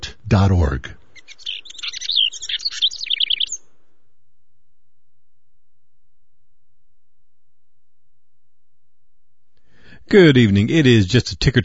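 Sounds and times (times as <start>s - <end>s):
speech: 0.3s - 1.0s, 10.1s - 11.6s
male house wren singing: 1.1s - 3.7s.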